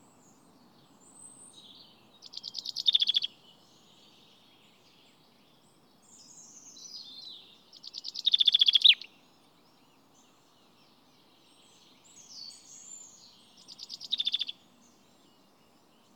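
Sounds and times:
common chaffinch Fringilla coelebs singing: 1.7s - 3.9s, 6.2s - 9.2s, 11.8s - 16.1s.

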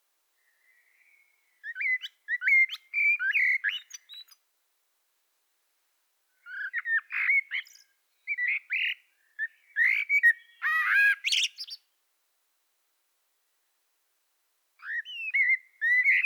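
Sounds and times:
common blackbird song: 0.4s - 4.4s, 6.4s - 11.8s, 14.8s - 16.2s.

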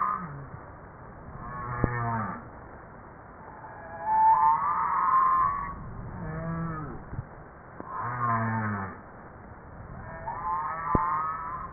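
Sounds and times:
humpback whale calls: 0.0s - 0.6s, 1.3s - 2.5s, 3.4s - 7.1s, 7.8s - 9.0s, 9.9s - 11.7s.

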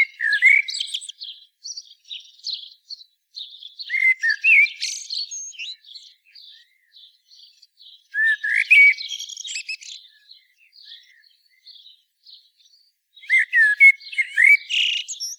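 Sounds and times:
common blackbird singing, Turdus merula: 0.0s - 15.3s.

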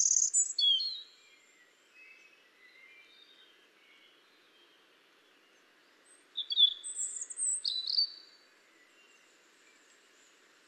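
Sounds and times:
European robin Erithacus rubecula singing: 0.0s - 4.8s, 6.4s - 9.8s.

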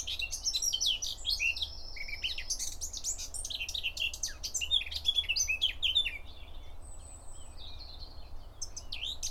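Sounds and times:
Eurasian blackcap Sylvia atricapilla singing: 0.0s - 9.2s.

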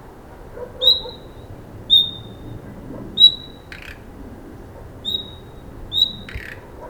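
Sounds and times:
Common nightingale Luscinia megarhynchos giving thin whistled calls: 0.8s - 2.4s, 3.2s - 3.7s, 5.0s - 6.6s.

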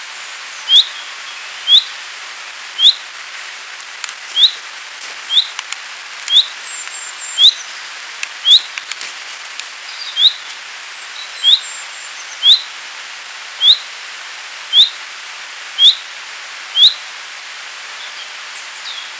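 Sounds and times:
steady hiss: 0.0s - 19.1s
common chaffinch (Fringilla coelebs) bright call note: 4.2s - 7.8s
faint clicks: 5.5s - 7.0s, 8.2s - 9.7s.

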